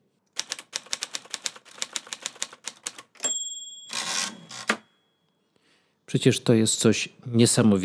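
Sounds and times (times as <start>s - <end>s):
manual typewriter keystrokes: 0.4s - 4.8s
speech: 6.1s - 7.8s.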